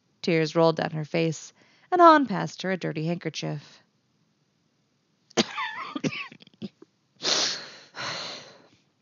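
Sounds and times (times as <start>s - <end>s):
speech: 0.2s - 3.8s
choking coughing fit after gulping a strong drink: 5.4s - 6.8s
raspy gasping breaths: 7.2s - 8.8s.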